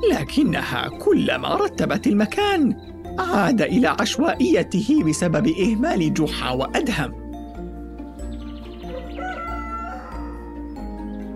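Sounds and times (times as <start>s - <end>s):
speech: 0.0s - 7.2s
rooster crowing: 8.8s - 10.7s.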